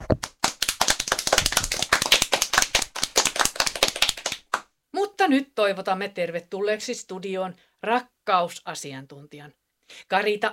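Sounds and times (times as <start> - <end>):
studio audience applause: 0.3 - 4.6
speech: 5.2 - 10.5.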